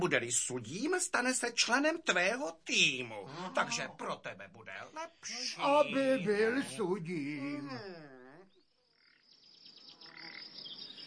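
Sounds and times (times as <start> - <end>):
speech: 0.0 - 8.2
small bird perched on a window chirping: 7.7 - 11.0.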